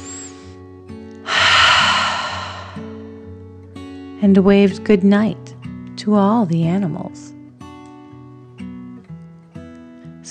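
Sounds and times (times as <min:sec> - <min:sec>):
deep human breath in and out voiced for a sleepy dragon: 0:01.3 - 0:03.1
speech: 0:04.2 - 0:05.4, 0:06.0 - 0:07.3.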